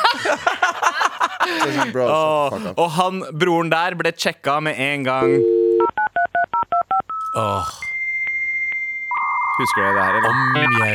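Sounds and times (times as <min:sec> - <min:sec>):
laughter: 0:00.0 - 0:02.8
speech: 0:01.7 - 0:05.6, 0:07.4 - 0:07.8, 0:09.6 - 0:10.9
quick touch-tone beeps: 0:06.6 - 0:10.9
steady dial-up modem tone: 0:07.1 - 0:10.9.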